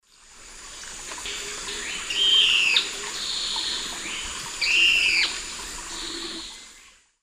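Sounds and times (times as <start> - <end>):
Philydor erythropterum calls in the Eastern Lowlands of South America: 1.2 - 6.7.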